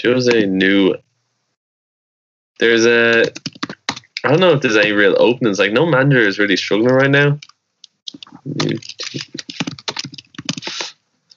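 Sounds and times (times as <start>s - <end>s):
speech: 0.0s - 1.0s, 2.6s - 3.5s, 4.2s - 7.5s, 8.3s - 9.8s
rapid forceful typing on a computer keyboard during a web search: 3.1s - 4.2s, 6.9s - 10.9s.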